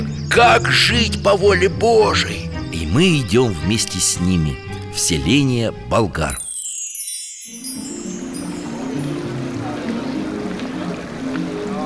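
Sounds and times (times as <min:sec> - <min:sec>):
speech: 0:00.4 - 0:06.4
water splashing as people dip into a river during baptism: 0:07.6 - 0:11.8
faint murmuring voices: 0:08.7 - 0:11.8.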